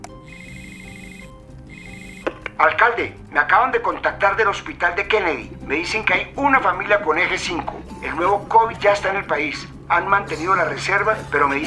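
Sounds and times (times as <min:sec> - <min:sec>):
telephone ringing with an incoming call: 0:00.2 - 0:02.6
speech: 0:02.6 - 0:11.6.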